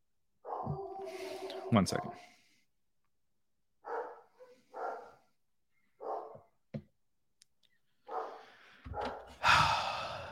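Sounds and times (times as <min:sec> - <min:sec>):
dogs barking indoors: 0:00.4 - 0:02.2, 0:03.8 - 0:05.2, 0:06.0 - 0:06.4, 0:08.1 - 0:09.4
speech: 0:01.1 - 0:02.3.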